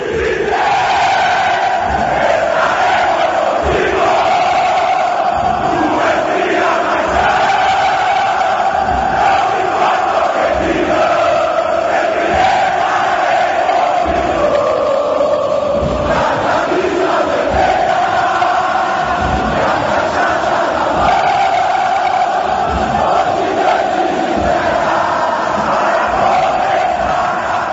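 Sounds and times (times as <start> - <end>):
large crowd of football supporters chanting a song parody: 0.0 - 27.7.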